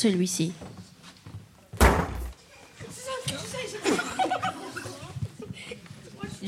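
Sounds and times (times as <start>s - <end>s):
speech: 0.0s - 0.7s
heavy blow struck on a door: 1.8s - 2.4s
people chatting and chuckling: 2.4s - 6.4s.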